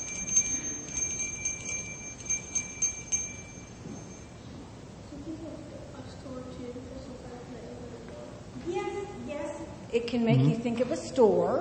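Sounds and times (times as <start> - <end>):
small bell jingling: 0.0 - 4.7
speech: 10.0 - 11.5.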